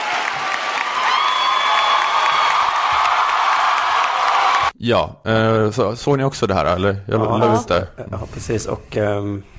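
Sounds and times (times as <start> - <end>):
large audience cheering and applauding: 0.0 - 4.7
speech: 4.8 - 9.5.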